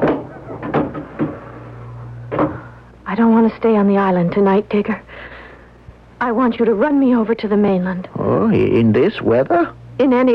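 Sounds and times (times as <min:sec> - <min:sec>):
door being shut with wooden clunks and knocks: 0:00.0 - 0:01.4
steady low hum: 0:00.0 - 0:10.3
speech: 0:03.2 - 0:05.3, 0:06.2 - 0:10.3.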